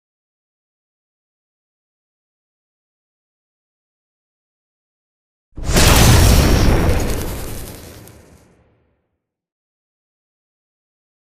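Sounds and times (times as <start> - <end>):
intro whoosh: 5.6 - 8.7.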